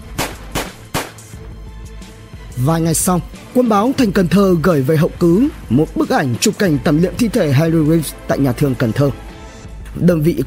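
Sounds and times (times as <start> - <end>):
sharp gunshots: 0.0 - 1.4
speech: 2.6 - 9.2, 10.0 - 10.4.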